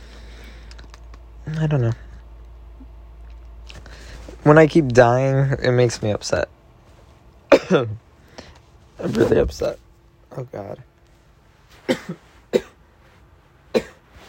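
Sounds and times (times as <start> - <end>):
speech: 1.5 - 2.1, 4.4 - 6.6, 7.7 - 8.0, 9.0 - 9.8, 10.4 - 10.9, 12.1 - 12.7
person coughing: 7.5 - 8.0, 11.8 - 12.8, 13.7 - 14.0.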